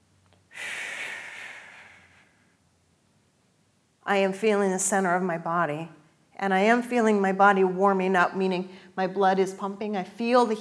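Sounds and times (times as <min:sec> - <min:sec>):
deep lateral breathing during Pilates exercise: 0:00.5 - 0:02.4
speech: 0:04.1 - 0:10.5.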